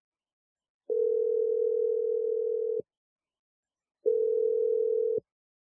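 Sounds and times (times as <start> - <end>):
long steady telephone tones: 0.9 - 2.8, 4.1 - 5.3.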